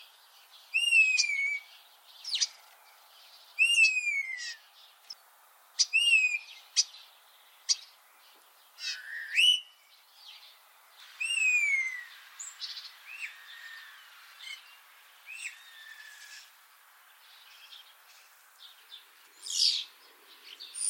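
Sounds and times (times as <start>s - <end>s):
common starling calls: 0.0s - 20.8s.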